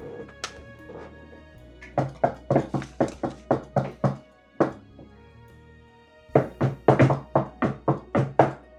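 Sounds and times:
secret knock rhythm of sharp knocks: 1.8s - 5.1s, 6.4s - 8.7s.

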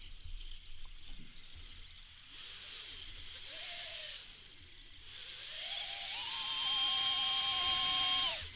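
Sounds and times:
small camera drone's motors whirring with a high-pitched whine: 3.4s - 8.5s.

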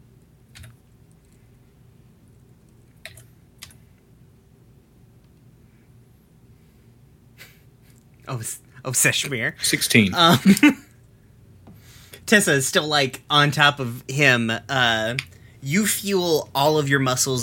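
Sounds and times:
steady low hum: 0.0s - 17.4s
computer keyboard key clicks: 0.5s - 0.8s, 3.0s - 3.8s
speech: 8.3s - 10.8s, 12.3s - 17.4s.

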